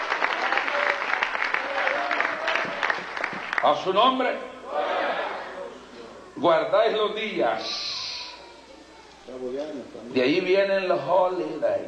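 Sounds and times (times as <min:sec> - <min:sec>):
church congregation applauding during a service: 0:00.0 - 0:04.2
speech: 0:03.6 - 0:05.0, 0:06.4 - 0:07.8, 0:09.3 - 0:11.8.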